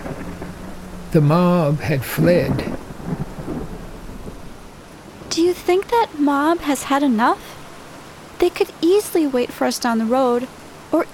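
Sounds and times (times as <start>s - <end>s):
deep rolling thunder: 0.0s - 6.0s
heavy rain: 0.0s - 11.1s
speech: 1.1s - 2.7s, 5.4s - 7.5s, 8.4s - 11.1s.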